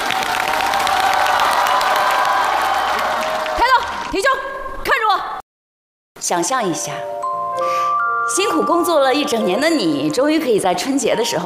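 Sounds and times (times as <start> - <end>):
scattered whoops and shouts: 0.0 - 4.0
group clapping: 0.0 - 4.3
speech: 6.3 - 11.4.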